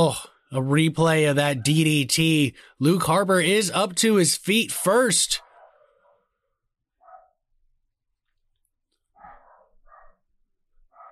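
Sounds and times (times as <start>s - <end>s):
speech: 0.0s - 5.4s
dog barking: 5.4s - 6.4s, 7.0s - 7.4s, 9.2s - 11.0s.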